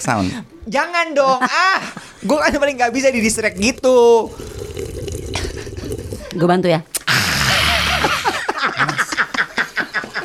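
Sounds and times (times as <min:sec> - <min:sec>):
speech: 0:00.0 - 0:04.5, 0:06.4 - 0:07.0
tea pouring into a cup: 0:02.6 - 0:06.4
laughter: 0:07.6 - 0:10.2.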